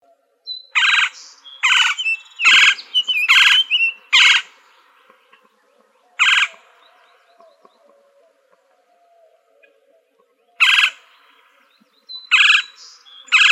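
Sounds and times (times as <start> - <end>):
Gila woodpecker squawking in Arizona: 0.6 - 5.4, 6.2 - 6.8, 10.6 - 11.1, 12.2 - 13.4.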